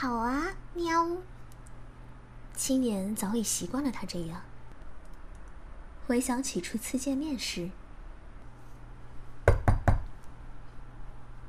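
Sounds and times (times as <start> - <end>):
speech: 0.0 - 1.4, 2.6 - 4.5, 6.1 - 7.8
faint low hum: 0.0 - 11.4
knocking on a door: 9.4 - 10.1.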